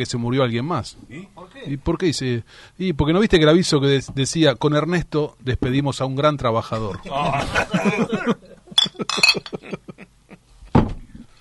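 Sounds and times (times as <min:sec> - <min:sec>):
speech: 0:00.0 - 0:08.5
laughter: 0:06.9 - 0:10.4
glasses clinking in a toast: 0:08.7 - 0:09.7.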